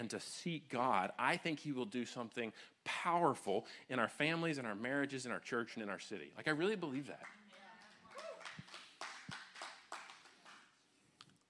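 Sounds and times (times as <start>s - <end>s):
speech: 0.0s - 7.4s
crowd clapping in a roomy space: 7.0s - 10.9s.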